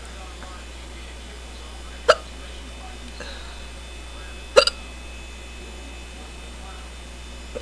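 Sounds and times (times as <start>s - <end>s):
faint steady electrical hum: 0.0s - 7.6s
sharp abrupt hiccups: 2.1s - 2.3s, 4.6s - 4.8s.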